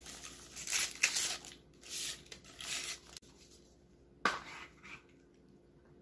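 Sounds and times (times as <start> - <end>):
wrapper being torn open: 0.0 - 3.2.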